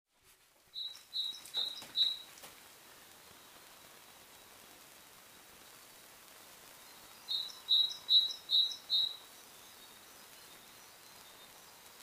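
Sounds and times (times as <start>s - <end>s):
faint background hiss: 0.1s - 12.0s
Great tit Parus major calls: 0.8s - 2.4s, 7.2s - 9.4s.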